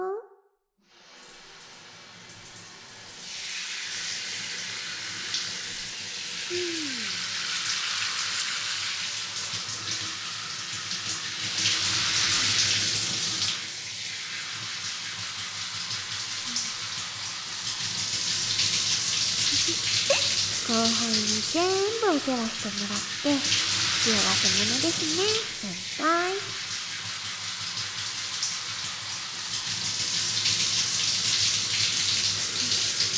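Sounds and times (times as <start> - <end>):
water running to rinse: 1.3 - 33.1
speech: 22.3 - 26.2.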